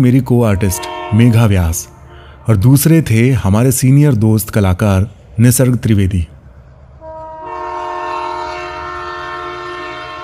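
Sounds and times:
speech: 0:00.0 - 0:06.4
metro train in Delhi travelling to Hauz Khas rumbling: 0:00.0 - 0:10.2
metro train horn blaring: 0:00.1 - 0:02.9, 0:07.0 - 0:10.2.

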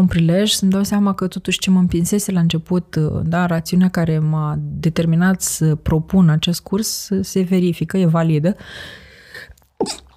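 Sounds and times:
speech: 0:00.0 - 0:09.0, 0:09.8 - 0:10.0
breathy intake: 0:08.6 - 0:09.6
sneeze: 0:09.8 - 0:10.1.

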